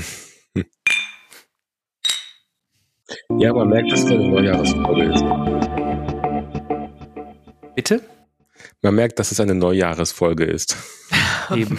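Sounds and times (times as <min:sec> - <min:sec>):
speech: 0:00.0 - 0:00.8, 0:03.2 - 0:05.7, 0:07.8 - 0:08.1, 0:08.8 - 0:11.7
glasses clinking together in a toast: 0:00.9 - 0:01.3, 0:02.0 - 0:02.5.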